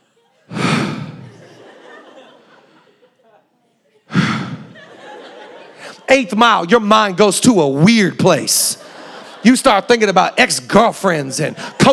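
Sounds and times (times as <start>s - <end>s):
laughter: 0.0s - 6.9s, 8.4s - 11.9s
voice imitating heavy breathing of a tired runner: 0.5s - 1.6s, 4.1s - 5.0s
speech: 6.1s - 8.8s, 9.4s - 11.9s.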